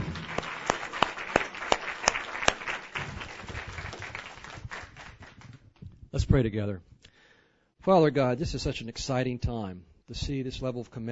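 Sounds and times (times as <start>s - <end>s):
congregation applause: 0.0s - 5.6s
speech: 6.2s - 6.9s, 7.8s - 11.1s.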